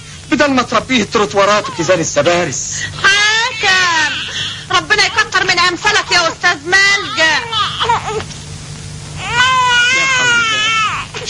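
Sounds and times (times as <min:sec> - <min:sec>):
speech: 0:00.3 - 0:03.8
baby crying from hunger: 0:01.4 - 0:02.4, 0:03.0 - 0:08.3, 0:09.2 - 0:11.2.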